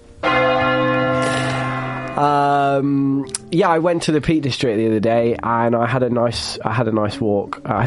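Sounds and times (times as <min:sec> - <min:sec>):
single large bell struck with deep ringing tone: 0:00.2 - 0:04.2
speech: 0:02.2 - 0:07.8.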